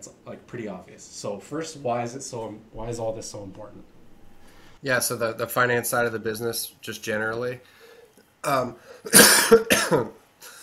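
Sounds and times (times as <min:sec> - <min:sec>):
speech: 0:00.0 - 0:04.0, 0:04.8 - 0:07.8, 0:08.4 - 0:10.2
person coughing with harsh raspy bursts: 0:09.1 - 0:10.1.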